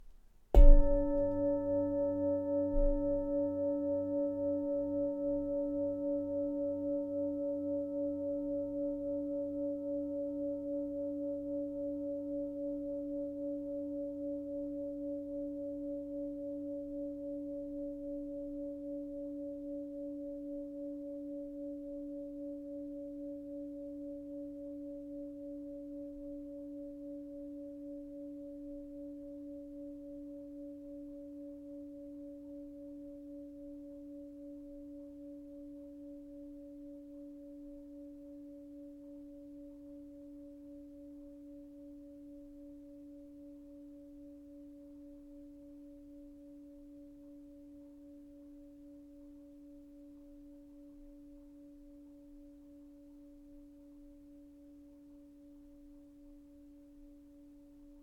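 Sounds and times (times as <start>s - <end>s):
extra large singing bowl ringing: 0.6s - 31.9s.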